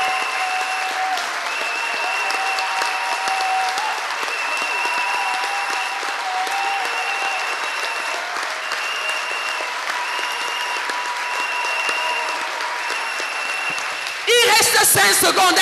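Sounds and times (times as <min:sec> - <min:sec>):
church congregation clapping hands in praise: 0:00.0 - 0:15.5.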